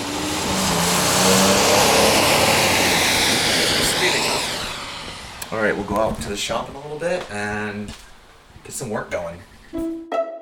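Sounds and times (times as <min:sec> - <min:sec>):
cars swishing past on a wet road: 0:00.0 - 0:05.5
speech: 0:05.7 - 0:08.0, 0:08.6 - 0:09.9.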